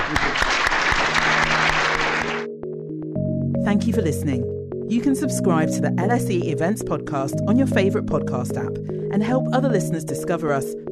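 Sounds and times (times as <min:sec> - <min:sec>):
audience applauding after a university public lecture: 0:00.0 - 0:02.5
speech: 0:03.7 - 0:10.9.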